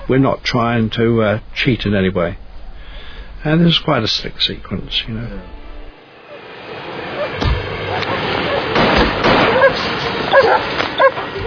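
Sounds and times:
dense rumbling noise: 0:00.0 - 0:11.4
speech: 0:00.1 - 0:02.4, 0:03.4 - 0:05.6
Royal Air Force police dogs barking on an aerodrome: 0:06.2 - 0:11.4.

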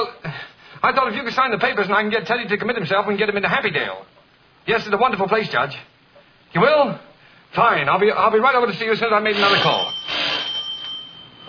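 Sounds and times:
speech: 0:00.8 - 0:05.9, 0:06.5 - 0:10.2
doorbell ringing with a sustained metallic tone: 0:09.5 - 0:11.4.

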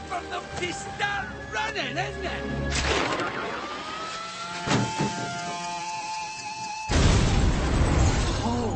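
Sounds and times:
speech: 0:00.2 - 0:03.6
video game truck crash with impact and shattering: 0:02.7 - 0:05.6, 0:06.9 - 0:08.6.

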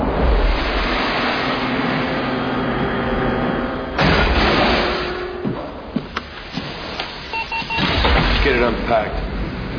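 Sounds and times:
mechanical drone and rumble: 0:00.0 - 0:06.1, 0:08.0 - 0:09.7
tracking device beeping: 0:07.3 - 0:08.0.

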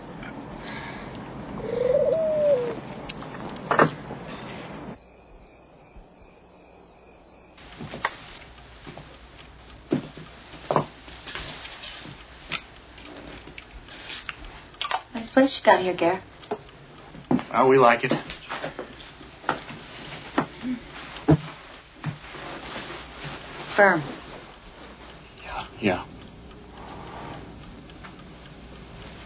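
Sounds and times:
rustling ambient noise: 0:00.0 - 0:29.2
pigeons cooing: 0:01.4 - 0:03.1
high steady insect trill: 0:05.0 - 0:07.6
speech: 0:15.4 - 0:16.3, 0:17.5 - 0:18.3, 0:23.8 - 0:24.2, 0:25.8 - 0:26.1.

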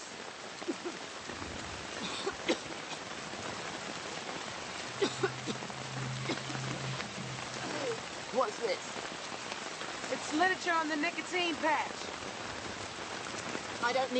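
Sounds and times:
steady rain hissing: 0:00.0 - 0:14.1
low hum: 0:04.6 - 0:08.3
speech: 0:08.4 - 0:09.1, 0:10.3 - 0:12.1, 0:13.8 - 0:14.1.

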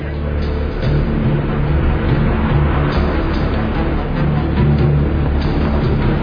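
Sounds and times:
low engine rumble inside a moving car: 0:00.0 - 0:06.2
road noise from inside a moving car: 0:00.0 - 0:06.2.

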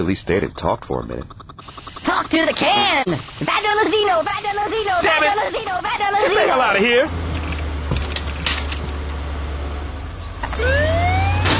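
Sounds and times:
scattered clicks: 0:00.0 - 0:04.5
speech: 0:00.0 - 0:07.2, 0:10.6 - 0:10.9
low engine rumble: 0:00.0 - 0:11.5
ambulance siren wailing: 0:10.5 - 0:11.5.

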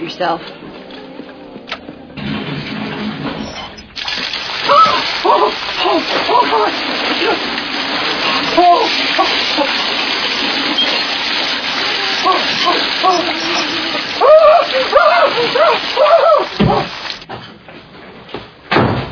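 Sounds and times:
speech: 0:00.1 - 0:00.7, 0:05.3 - 0:07.7, 0:08.4 - 0:11.1, 0:12.2 - 0:17.0
shower water running: 0:02.2 - 0:17.3.

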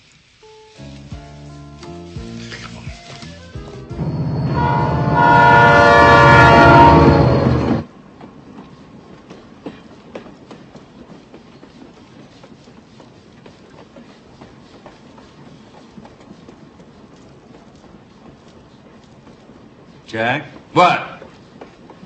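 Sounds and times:
westbound freight train near Channing rumbling on tracks: 0:03.2 - 0:22.0
freight train horn blaring: 0:04.0 - 0:07.8
speech: 0:20.2 - 0:21.1.

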